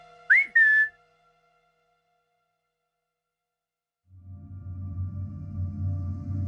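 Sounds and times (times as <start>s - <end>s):
person whistling to call dogs: 0.3s - 0.9s
low rumbling drone: 4.1s - 6.4s.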